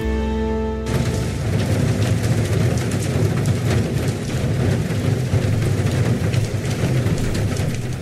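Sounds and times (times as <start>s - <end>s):
brief tonal note: 0.0s - 2.2s
heavy rain pouring down: 0.0s - 8.0s
thunder: 0.8s - 8.0s.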